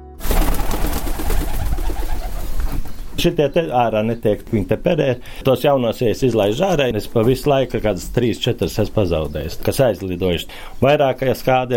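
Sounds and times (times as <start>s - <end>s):
many pigeons cooing: 0.5s - 3.3s
speech: 3.2s - 11.7s.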